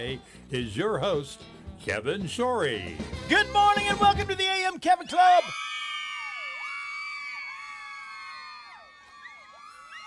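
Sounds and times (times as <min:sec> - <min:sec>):
speech: 0:00.0 - 0:05.7
crowd of girls screaming: 0:05.1 - 0:10.0.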